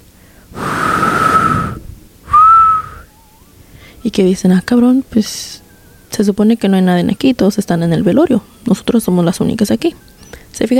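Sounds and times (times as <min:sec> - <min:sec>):
person imitating someone whistling: 0:00.6 - 0:03.5
speech: 0:04.1 - 0:10.7.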